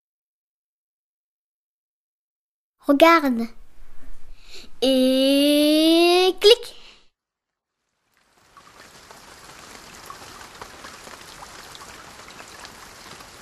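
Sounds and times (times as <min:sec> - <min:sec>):
speech: 0:02.8 - 0:03.6, 0:04.8 - 0:06.8
steady rain pouring: 0:07.7 - 0:13.4.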